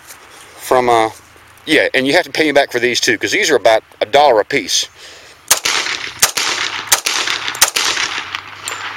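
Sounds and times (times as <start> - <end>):
speech: 0.8 - 5.2
.45 pistol firing exploding hollow point rounds: 5.5 - 8.9.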